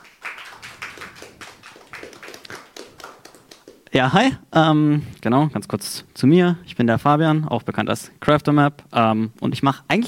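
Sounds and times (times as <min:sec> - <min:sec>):
audience applauding a speaker: 0:00.0 - 0:03.8
speech: 0:03.9 - 0:10.0.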